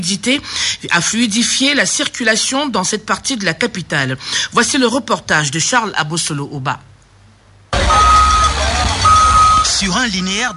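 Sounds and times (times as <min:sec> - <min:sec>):
speech: 0:00.0 - 0:06.9, 0:09.8 - 0:10.5
excavator working at a roadworks site: 0:07.7 - 0:10.5.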